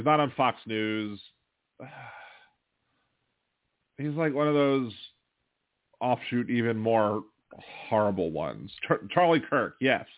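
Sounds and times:
speech: 0:00.0 - 0:02.2, 0:04.0 - 0:05.0, 0:06.0 - 0:10.1
person yawning with a low voiced groan: 0:01.8 - 0:02.4.

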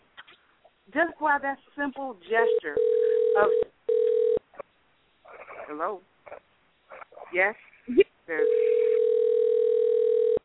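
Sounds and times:
speech: 0:00.9 - 0:03.7, 0:05.7 - 0:06.5, 0:07.3 - 0:08.7
computer call electronic telephone tone: 0:02.5 - 0:04.4, 0:08.4 - 0:10.4.

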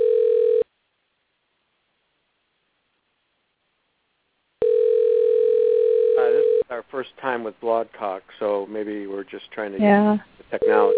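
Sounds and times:
short electronic telephone ring tone: 0:00.0 - 0:00.6, 0:04.6 - 0:06.6, 0:10.6 - 0:10.9
speech: 0:06.8 - 0:10.9.

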